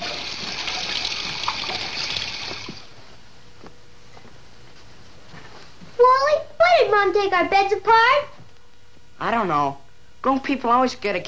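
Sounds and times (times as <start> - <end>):
water running from a tap: 0.0 - 2.9
speech: 7.0 - 8.4, 9.2 - 11.2.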